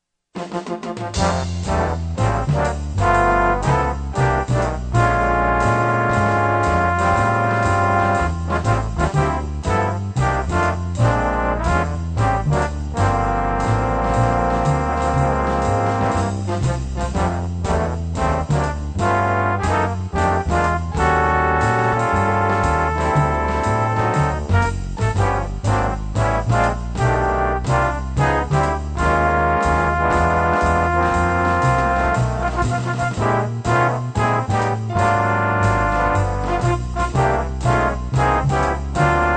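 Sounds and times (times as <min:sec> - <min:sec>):
trombones: 0:00.3 - 0:39.3.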